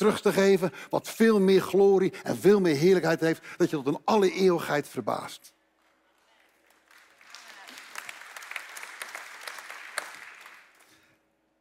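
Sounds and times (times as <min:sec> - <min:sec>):
speech: 0:00.0 - 0:05.6
audience applause: 0:06.6 - 0:11.0.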